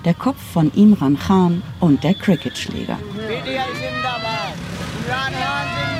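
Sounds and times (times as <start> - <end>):
speech: 0.0 - 5.9
car and motorcycle engines of a night-time convoy in Islamabad Pakistan: 2.4 - 5.9
supporters chanting and shouting: 3.0 - 5.9.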